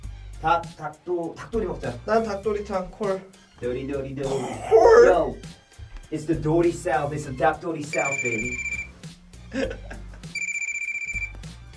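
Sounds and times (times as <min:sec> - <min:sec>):
speech: 0:00.4 - 0:08.7, 0:09.5 - 0:09.9
murmured voice: 0:04.2 - 0:05.4
telephone ringing with an electronic trill: 0:07.9 - 0:09.0, 0:10.4 - 0:11.5
laughter: 0:09.5 - 0:10.3.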